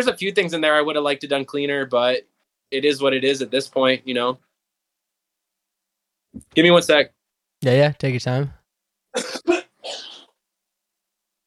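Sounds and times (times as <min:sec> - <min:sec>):
speech: 0:00.0 - 0:04.5, 0:06.3 - 0:08.6, 0:09.2 - 0:09.6
person clearing throat raspily: 0:09.1 - 0:10.4
person coughing harshly: 0:09.1 - 0:10.4.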